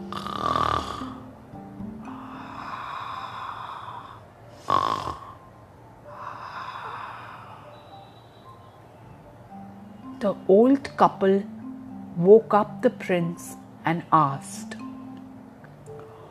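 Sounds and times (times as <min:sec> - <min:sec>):
loud rasping buzzy snoring with snorts: 0:00.1 - 0:01.3, 0:02.5 - 0:05.5
speech: 0:10.2 - 0:11.5, 0:12.2 - 0:14.8.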